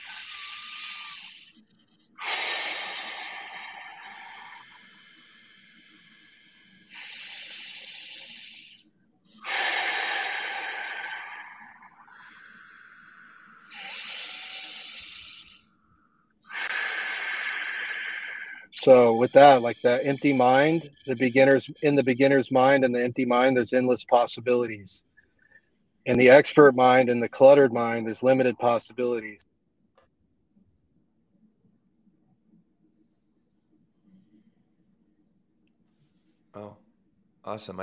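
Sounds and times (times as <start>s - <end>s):
longer hissing exhales through the mouth: 0.0s - 1.6s, 2.2s - 8.8s, 9.4s - 15.6s, 16.5s - 22.3s
slow airy inhales through the nose: 2.2s - 8.8s, 9.4s - 15.6s, 16.5s - 21.1s
speech: 18.8s - 25.1s, 26.0s - 29.5s, 37.5s - 37.8s.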